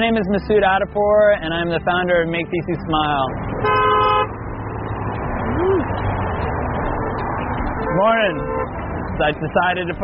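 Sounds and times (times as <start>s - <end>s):
speech: 0.0s - 3.8s, 8.0s - 8.6s, 9.2s - 10.0s
traffic noise from a busy street: 0.0s - 10.0s
car horn honking at a busy intersection: 3.6s - 4.4s, 7.8s - 8.8s.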